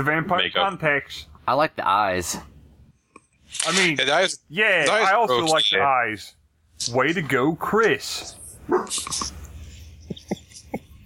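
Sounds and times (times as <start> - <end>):
speech: 0.0 - 2.5, 3.5 - 9.4
dog barking: 8.7 - 9.0.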